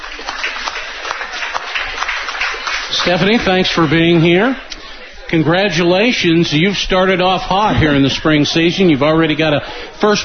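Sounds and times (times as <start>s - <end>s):
audience applause at a coaches show: 0.0s - 4.6s
speech: 3.0s - 4.7s, 5.3s - 10.2s.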